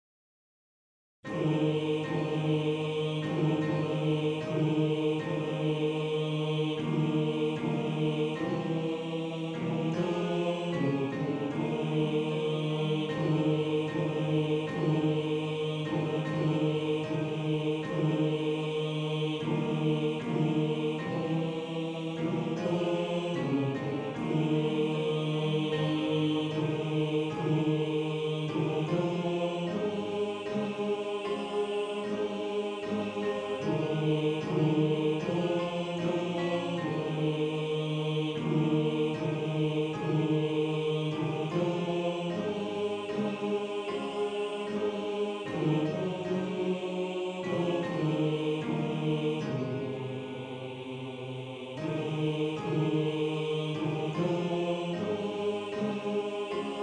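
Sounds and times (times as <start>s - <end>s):
male choir bass voices: 1.3s - 56.8s.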